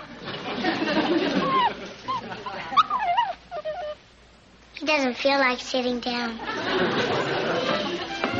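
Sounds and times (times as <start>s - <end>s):
laughter: 0.3s - 2.9s, 6.4s - 8.3s
mongrel dog whimpering and whining: 1.3s - 4.1s
speech: 4.9s - 7.4s.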